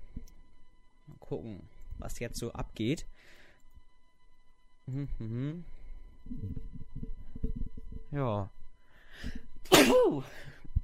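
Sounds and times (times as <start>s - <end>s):
speech: 1.3s - 3.4s, 4.9s - 7.0s, 8.1s - 8.6s, 9.2s - 10.6s
single loud sneeze: 9.7s - 10.2s.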